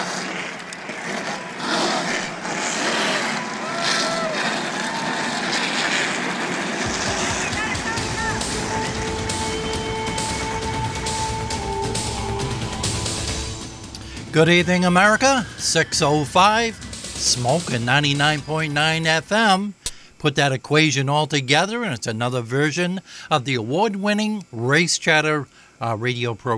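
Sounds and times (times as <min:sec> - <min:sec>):
crowd noise: 0:00.0 - 0:17.6
race car engines starting and revving: 0:00.0 - 0:18.8
speech: 0:14.4 - 0:26.5.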